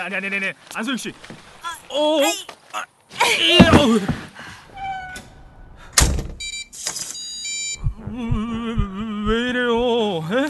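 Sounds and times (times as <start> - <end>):
speech: 0.0 - 4.3, 8.1 - 10.4
door slamming shut with a deep thud: 4.8 - 6.5
steady high electronic beeping tones: 6.4 - 9.9.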